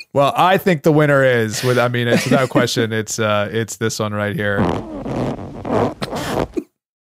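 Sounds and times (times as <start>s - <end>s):
speech: 0.2s - 5.4s
laughter: 1.4s - 3.1s
recorded fart played back: 4.5s - 6.7s.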